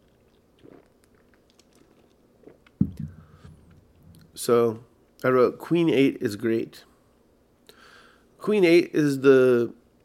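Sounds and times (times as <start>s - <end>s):
person sipping Diet Mountain Dew soda: 0.0s - 4.3s
slurp and swallow: 0.0s - 4.3s
speech: 4.4s - 6.9s, 8.4s - 9.8s.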